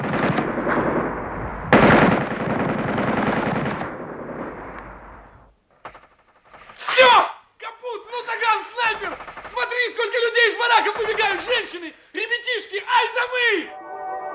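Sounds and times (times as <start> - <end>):
machine gun firing: 0.0 - 4.7, 5.7 - 7.2, 8.7 - 11.8
battle noise: 6.7 - 14.0
man shouting urgently: 6.8 - 13.7.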